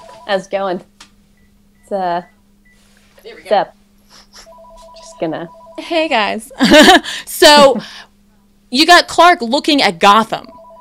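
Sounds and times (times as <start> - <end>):
phone ringing with a two-tone electronic trill: 0.0 - 0.5, 4.4 - 6.8, 10.4 - 10.7
low constant hum: 0.0 - 10.7
speech: 0.3 - 0.9, 1.9 - 2.4, 3.2 - 3.8, 5.2 - 8.1, 8.7 - 10.6.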